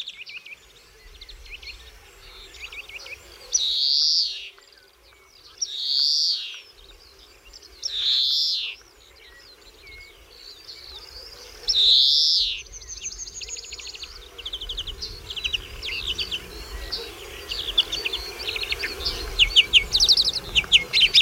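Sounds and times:
tit calls and songs: 0.0s - 21.2s.

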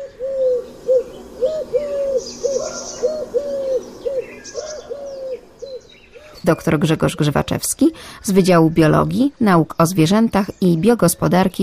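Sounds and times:
Eurasian collared dove cooing: 0.0s - 7.6s
smaller birds chirping and tweeting outdoors: 0.0s - 11.6s
speech: 6.4s - 11.6s.

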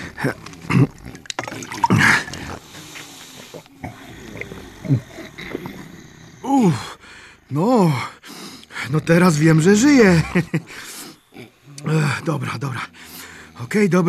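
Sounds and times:
person gulping water: 0.0s - 5.8s
throaty grunting: 0.0s - 14.0s
speech: 0.2s - 1.0s, 9.0s - 10.9s, 12.2s - 14.0s
water pouring in splashing bursts: 0.7s - 2.6s
laughter: 9.8s - 11.0s.

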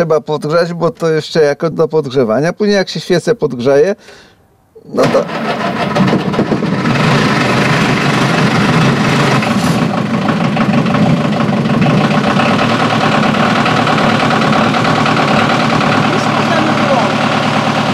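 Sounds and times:
speech: 0.0s - 5.7s
old car engine starting and idling with diesel-like rumble: 5.0s - 17.9s.

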